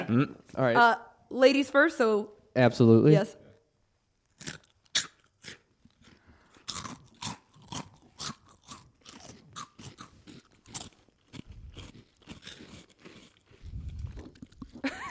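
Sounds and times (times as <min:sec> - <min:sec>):
speech: 0:00.1 - 0:03.4
several people crunching onion-ring snacks: 0:04.2 - 0:15.0.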